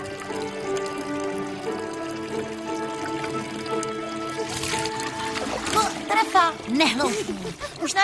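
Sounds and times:
water trickling from a spring: 0.0 - 8.0
speech: 6.3 - 8.0.

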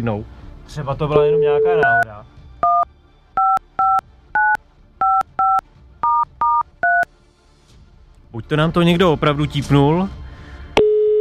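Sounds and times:
speech: 0.0 - 2.4, 8.3 - 10.2
touch-tone phone beeps dialing an outgoing call: 1.2 - 2.0, 2.6 - 7.0, 10.8 - 11.1.

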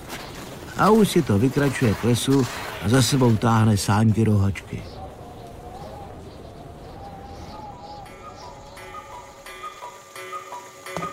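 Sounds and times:
speech: 0.8 - 5.0
cuckoo clocks calling to strike twelve o'clock: 7.2 - 11.1
several cuckoo clocks ticking: 8.1 - 11.1.

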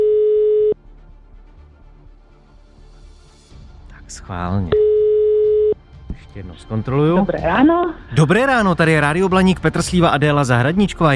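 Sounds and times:
telephone ringback tone after dialing: 0.0 - 0.8, 4.8 - 5.8
speech: 4.2 - 4.9, 6.2 - 11.1.

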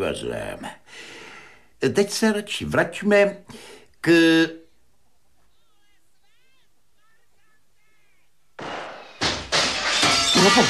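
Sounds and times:
speech: 0.0 - 1.1, 1.8 - 4.6, 10.4 - 10.6
loud gunshots through a window: 8.6 - 10.2.

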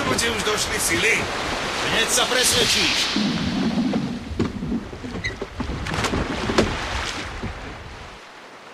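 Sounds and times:
steady wash of surf: 0.0 - 8.7
small boat scraping while shoved off into the sea: 0.1 - 8.0
speech: 0.2 - 3.6
water sloshing: 1.3 - 8.4
small boat knocking while shoved off into the sea: 3.2 - 8.0.

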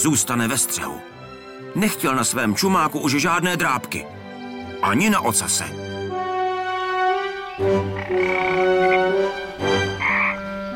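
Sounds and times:
speech: 0.0 - 4.2, 4.8 - 5.9, 7.6 - 9.9
frogs croaking at a lake: 6.7 - 10.7.

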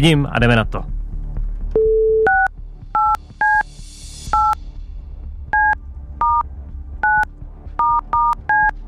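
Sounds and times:
speech: 0.0 - 0.9
DTMF beeps of a phone number being dialed: 1.8 - 3.6, 4.4 - 4.6, 5.6 - 6.4, 7.0 - 8.7.

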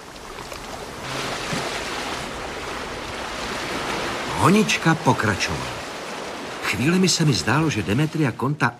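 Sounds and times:
rough sea surf churning in a strait: 0.0 - 8.7
speech: 4.4 - 5.8, 6.7 - 8.7.

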